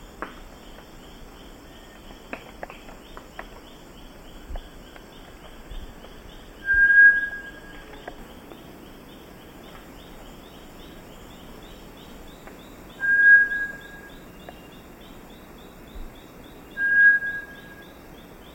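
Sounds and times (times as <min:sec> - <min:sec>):
rhythmic insect chorus: 0:00.0 - 0:18.5
Bartlett's tinamou whistled notes in the eastern lowlands of South America: 0:06.6 - 0:07.9, 0:12.9 - 0:14.8, 0:16.7 - 0:18.0.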